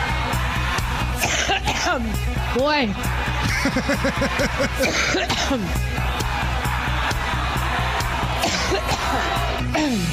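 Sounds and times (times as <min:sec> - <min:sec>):
voices murmuring in a noisy crowd: 0:00.2 - 0:10.1
loud harsh coughing bursts: 0:01.2 - 0:02.0, 0:03.6 - 0:05.7, 0:08.4 - 0:10.1
speech: 0:01.9 - 0:06.1, 0:09.1 - 0:10.1
scattered laughter: 0:03.1 - 0:09.6.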